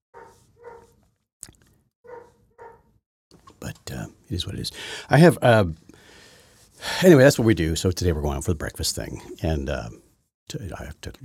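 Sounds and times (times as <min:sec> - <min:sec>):
dog barking: 0:00.2 - 0:01.0, 0:02.1 - 0:02.9
speech: 0:03.7 - 0:05.8, 0:06.8 - 0:11.2.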